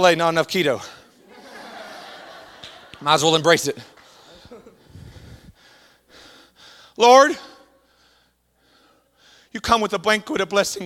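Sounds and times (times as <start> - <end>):
speech: 0.0 - 1.0, 3.0 - 3.9, 7.0 - 7.5, 9.5 - 10.8
laughter: 1.1 - 5.0
heavy labored breathing of someone out of breath: 4.0 - 9.5.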